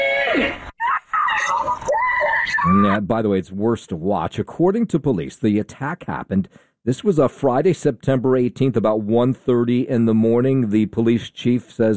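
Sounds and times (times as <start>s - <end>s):
woman screaming for help in her neighborhood: 0.0s - 3.0s
speech: 2.7s - 11.9s.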